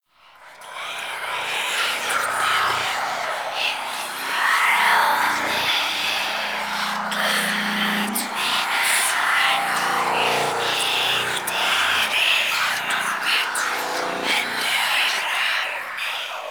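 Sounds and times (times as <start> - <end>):
high-pitched whispers ambience: 0.5 - 15.8.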